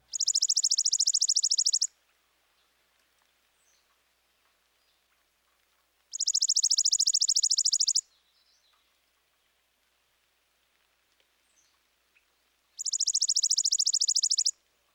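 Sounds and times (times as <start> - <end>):
chipping sparrow singing rapid dry trills: 0.1 - 1.9, 6.1 - 8.0, 12.8 - 14.5.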